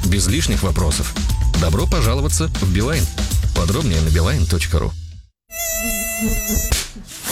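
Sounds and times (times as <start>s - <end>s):
speech: 0.2s - 5.0s, 6.2s - 7.1s
mosquito whining in a steady high-pitched drone: 5.5s - 7.0s.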